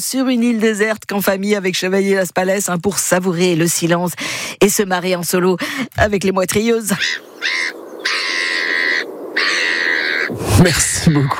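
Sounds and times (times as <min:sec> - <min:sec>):
speech: 0:00.0 - 0:08.2, 0:10.3 - 0:11.3
seagulls calling with harsh cries: 0:06.8 - 0:11.3.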